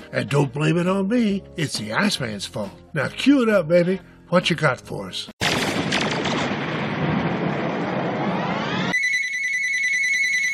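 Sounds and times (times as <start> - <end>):
speech: 0.1 - 5.3
rushing rumbling noise: 5.9 - 8.9
shrill electronic telephone ring: 8.9 - 10.5.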